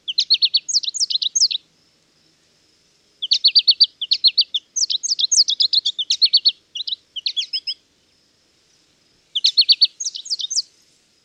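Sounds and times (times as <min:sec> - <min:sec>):
American Goldfinch song: 0:00.0 - 0:01.6, 0:03.2 - 0:07.8, 0:09.3 - 0:10.7.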